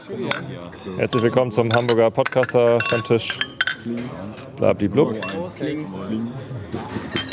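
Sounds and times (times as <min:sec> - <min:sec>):
glasses clinking together in a toast: 0:00.0 - 0:04.5, 0:05.1 - 0:05.8, 0:07.0 - 0:07.3
speech: 0:00.0 - 0:07.1
voices murmuring and chattering: 0:00.0 - 0:07.3.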